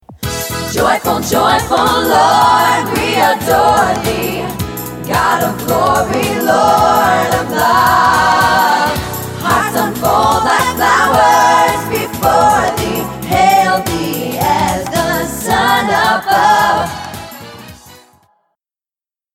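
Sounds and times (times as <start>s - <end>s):
joyful choir singing: 0.4s - 17.9s.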